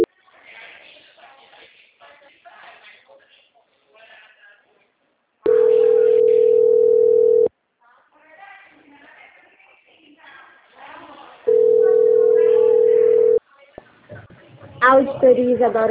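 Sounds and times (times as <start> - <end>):
long steady telephone tones after a transferred call drops: 5.5 - 7.5, 11.5 - 13.4
speech: 15.2 - 15.8.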